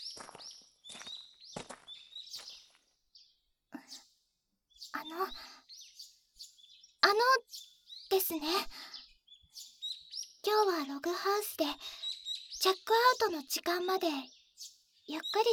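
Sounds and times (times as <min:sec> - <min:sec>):
birds chirping and singing: 0:00.0 - 0:04.1, 0:04.7 - 0:15.5
speech: 0:08.2 - 0:08.8, 0:10.5 - 0:12.0, 0:12.6 - 0:14.4, 0:15.1 - 0:15.5.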